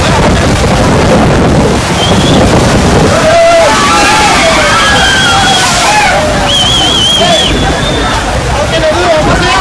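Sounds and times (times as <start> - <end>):
rough sea crashing against safety barriers at a seafront promenade: 0.0 - 9.5.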